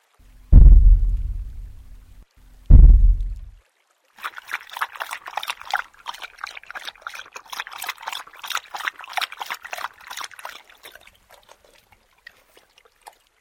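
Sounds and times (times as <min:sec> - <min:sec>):
heavy low thuds: 0:00.5 - 0:02.1, 0:02.7 - 0:03.5
creature lapping and gurgling as it drinks at a stream: 0:04.1 - 0:13.3.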